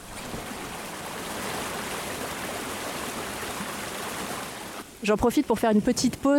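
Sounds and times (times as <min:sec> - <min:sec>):
small waterfall rushing near a lake: 0:00.0 - 0:05.1
speech: 0:05.0 - 0:06.3.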